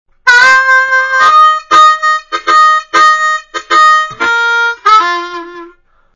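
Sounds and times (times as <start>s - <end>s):
Bb harmonica pull slap played slowly: 1.3s - 5.4s.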